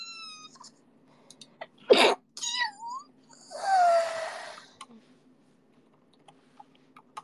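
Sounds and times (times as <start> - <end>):
person sneezing: 1.9 - 2.3
high squeaky vocal noises: 1.9 - 4.6
whiny vocal sound: 1.9 - 5.0.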